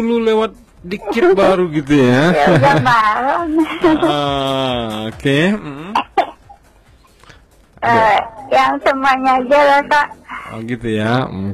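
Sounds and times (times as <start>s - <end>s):
speech: 0.0s - 6.2s, 7.8s - 11.5s
laughter: 2.1s - 6.1s
person with a cough coughing: 5.6s - 6.6s.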